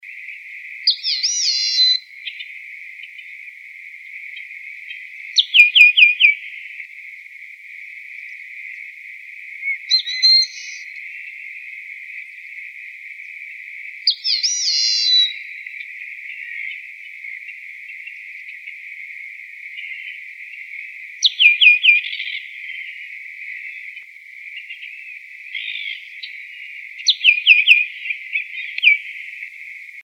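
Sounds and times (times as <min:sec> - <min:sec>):
yellow-winged blackbird Agelasticus thilius: 0:00.8 - 0:03.4, 0:04.3 - 0:06.8, 0:09.6 - 0:12.6, 0:13.2 - 0:18.9, 0:19.7 - 0:29.6.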